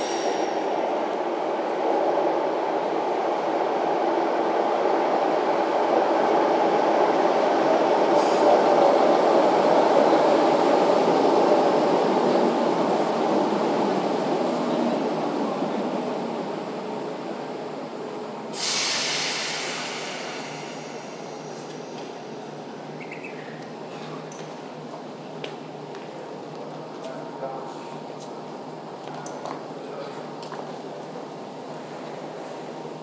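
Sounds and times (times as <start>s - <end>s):
train pulling into a platform at St Pancras International station: 0.0s - 33.0s
brief brighter hiss: 18.6s - 21.7s.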